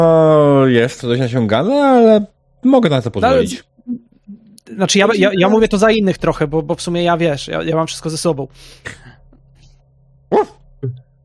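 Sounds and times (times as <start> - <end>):
speech: 0.0 - 4.1, 4.7 - 9.1, 10.3 - 11.0
low steady hum: 0.0 - 11.2
dog barking: 10.3 - 10.6.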